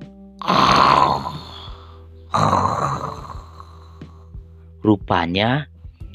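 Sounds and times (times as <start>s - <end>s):
soundly sleeping lion snoring with deep rumbling rasps: 0.4s - 4.2s
speech: 4.9s - 5.7s.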